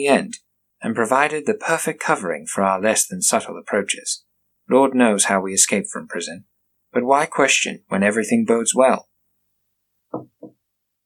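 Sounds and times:
speech: 0:00.0 - 0:09.1
tapping on the door of a dwelling: 0:10.1 - 0:10.6.

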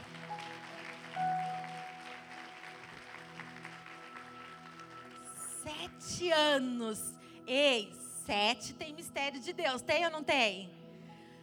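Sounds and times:
audience applauding: 0:00.0 - 0:05.7
sustained droning musical tone: 0:00.0 - 0:10.0
speech: 0:05.9 - 0:10.8.

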